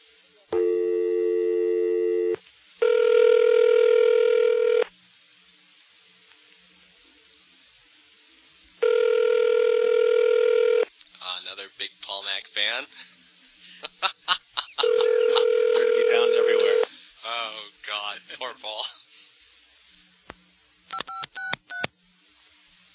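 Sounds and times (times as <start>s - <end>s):
electronic telephone ringback tones: 0.6s - 4.9s, 8.8s - 10.9s, 14.8s - 16.8s
laughter: 12.8s - 17.2s, 18.3s - 19.3s.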